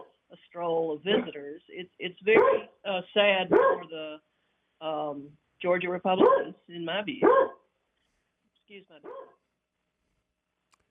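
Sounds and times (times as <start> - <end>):
speech: 0.6 - 7.6, 8.7 - 9.3
dog barking: 2.4 - 2.7, 3.5 - 3.9, 6.2 - 6.6, 7.2 - 7.6, 9.0 - 9.4.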